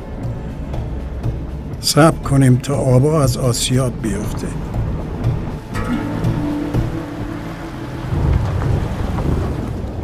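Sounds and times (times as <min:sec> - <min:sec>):
steady rain: 0:00.0 - 0:10.0
speech: 0:01.8 - 0:04.7
thunder rumbling: 0:04.4 - 0:10.0.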